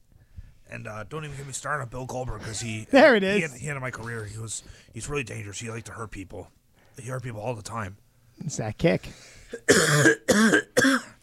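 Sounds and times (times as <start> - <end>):
speech: 0.7 - 11.0
person coughing hoarsely: 9.5 - 11.2.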